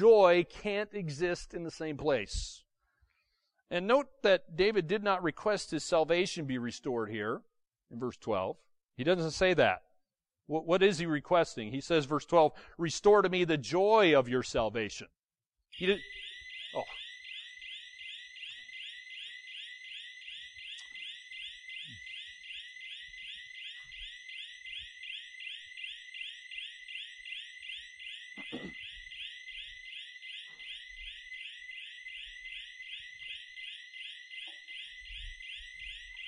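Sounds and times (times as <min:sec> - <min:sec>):
speech: 0:00.0 - 0:02.6, 0:03.7 - 0:09.9, 0:10.5 - 0:17.0
fire alarm ringing with a fast pulsing warble: 0:15.7 - 0:36.2.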